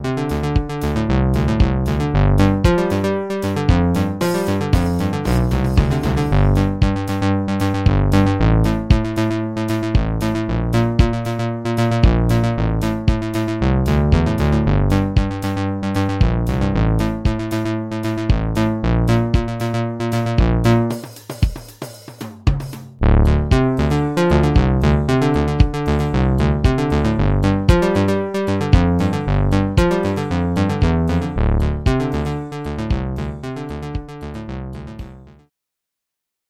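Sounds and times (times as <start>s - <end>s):
Moog Taurus 2 bass pedal: 0.0s - 21.1s, 23.0s - 35.5s.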